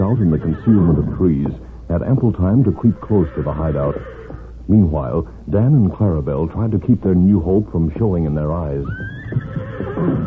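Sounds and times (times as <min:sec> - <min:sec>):
horse whinny: 0:00.0 - 0:01.4, 0:02.9 - 0:04.5, 0:08.8 - 0:10.2
speech: 0:00.1 - 0:10.2.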